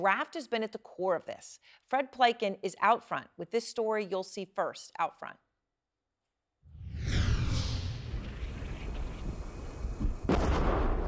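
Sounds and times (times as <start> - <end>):
speech: 0.0 - 5.4
explosions on the front line of the war in Ukraine: 6.7 - 11.0.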